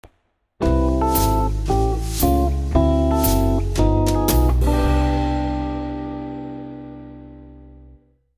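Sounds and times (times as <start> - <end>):
jazz jingle: 0.6 - 7.1.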